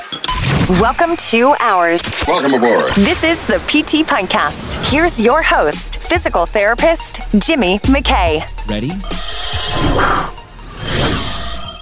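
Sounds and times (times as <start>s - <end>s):
speech: 0.7s - 10.4s
airy whooshing transition swooshes: 2.9s - 11.7s.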